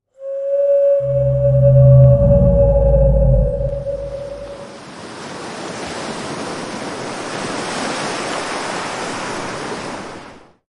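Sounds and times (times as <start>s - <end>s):
whale attack: 0.2s - 4.7s.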